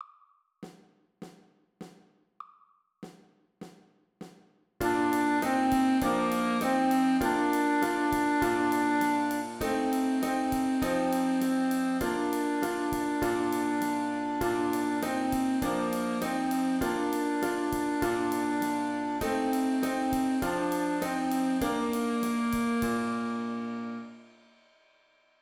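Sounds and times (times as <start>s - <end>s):
wind instruments playing a nursery rhyme: 4.8s - 24.2s.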